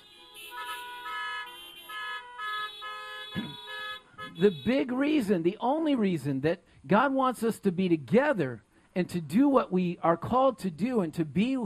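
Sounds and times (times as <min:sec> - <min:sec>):
several car horns honking: 0:00.0 - 0:05.2
speech: 0:04.4 - 0:11.6.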